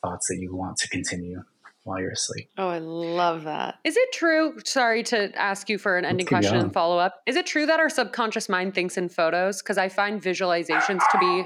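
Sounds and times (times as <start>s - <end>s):
laughter: 0.0s - 2.4s, 6.1s - 6.8s
speech: 0.0s - 11.4s
dog barking: 10.7s - 11.4s.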